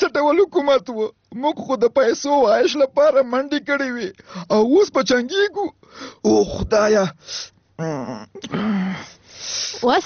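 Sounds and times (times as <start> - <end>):
speech: 0.0 - 10.0
man crying and moaning in his sleep during a bad dream: 7.8 - 9.0.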